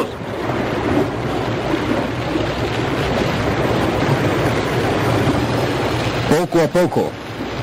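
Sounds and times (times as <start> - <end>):
turbulent swollen river water as soldiers wade across it: 0.0 - 7.6
speech: 6.5 - 7.2.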